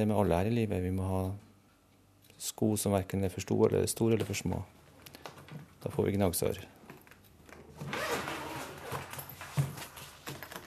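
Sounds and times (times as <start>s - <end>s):
speech: 0.0s - 1.5s, 2.4s - 6.8s
zipper rasping open on a violin case: 7.7s - 9.5s.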